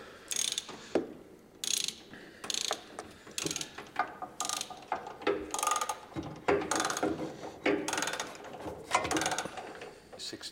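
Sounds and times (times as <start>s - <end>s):
ratchet bolting up rear brake calipers: 0.3s - 0.8s, 1.6s - 6.0s, 6.7s - 7.1s, 7.9s - 8.4s, 9.1s - 9.6s.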